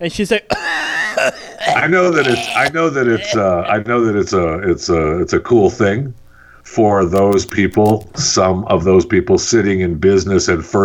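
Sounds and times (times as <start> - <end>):
speech: 0.0 - 10.8
voice imitating a hacking cough: 0.5 - 3.5.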